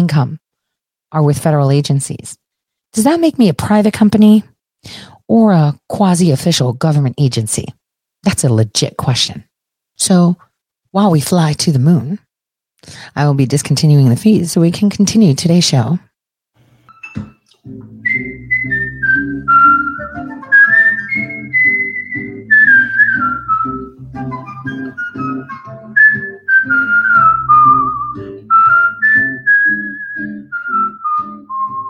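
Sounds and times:
speech: 0.0 - 0.4, 1.1 - 12.2, 12.8 - 16.1
person whistling a bright flowing tune: 17.9 - 31.8.

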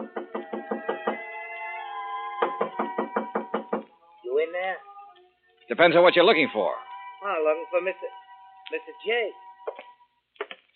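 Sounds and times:
knocking on a hotel room door: 0.0 - 1.3, 2.4 - 3.9
speech: 4.6 - 4.9, 5.7 - 9.4.

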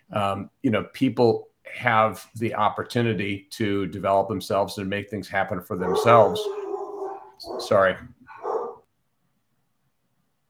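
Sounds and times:
speech: 0.2 - 6.6, 7.4 - 8.2
single short sharp dog bark: 5.8 - 8.9.

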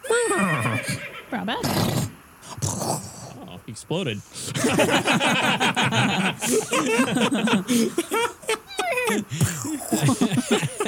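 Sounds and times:
horse whinnying: 0.0 - 2.2
speech: 1.4 - 1.9, 3.7 - 8.4, 9.1 - 10.8
laughter: 4.4 - 10.8.

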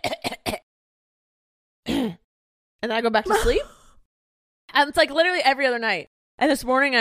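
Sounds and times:
voice imitating a night-time cough: 0.0 - 0.7, 1.8 - 2.3, 3.3 - 3.7
speech: 2.8 - 3.8, 4.7 - 6.9.

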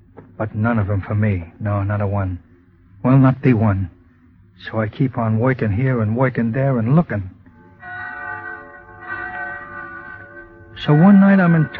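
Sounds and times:
speech: 0.4 - 4.0, 4.6 - 7.4, 10.8 - 11.7
church bells ringing a peal: 7.5 - 11.7.

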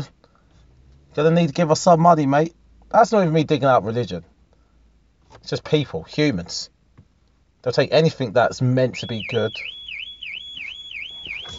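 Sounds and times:
speech: 1.2 - 4.3, 5.3 - 6.7, 7.6 - 9.8
car alarm wailing: 8.9 - 11.5.

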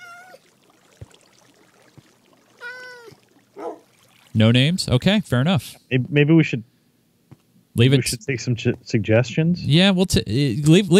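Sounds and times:
cat meowing: 0.0 - 0.4, 2.6 - 3.2
speech: 4.4 - 6.7, 7.8 - 10.9.

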